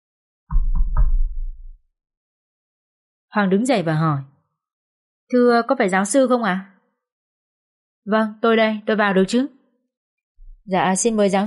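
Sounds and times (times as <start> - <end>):
firm knocks on an open door: 0.5 - 1.7
speech: 3.3 - 4.3, 5.3 - 6.7, 8.0 - 9.6, 10.7 - 11.4.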